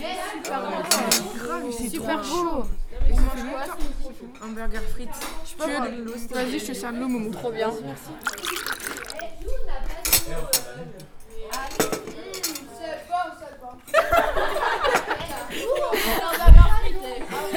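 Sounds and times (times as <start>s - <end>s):
conversation: 0.0s - 17.5s
dishes and cutlery clinking during breakfast: 8.2s - 9.3s, 10.0s - 12.9s
laughter: 13.9s - 16.5s.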